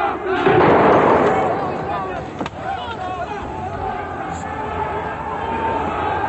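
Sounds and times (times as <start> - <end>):
large crowd of protesters shouting and chanting: 0.0 - 6.2
burst of automatic gunfire: 0.5 - 2.7.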